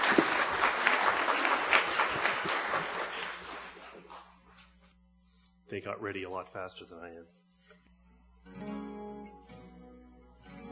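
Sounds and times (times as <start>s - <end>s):
crowd applause: 0.0s - 4.3s
speech: 5.8s - 7.4s.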